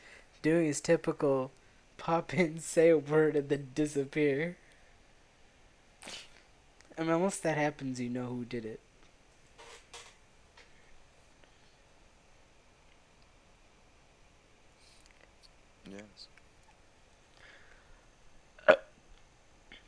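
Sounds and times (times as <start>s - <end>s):
speech: 0.4s - 4.6s, 6.0s - 6.3s, 7.0s - 8.9s
weak burp: 18.6s - 18.9s.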